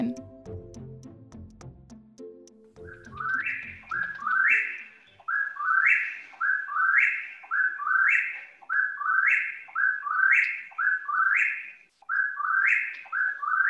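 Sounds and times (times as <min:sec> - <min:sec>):
low tonal music: 0:00.0 - 0:05.4
nightjar rhythmic whistled chant rising in pitch: 0:02.9 - 0:13.6.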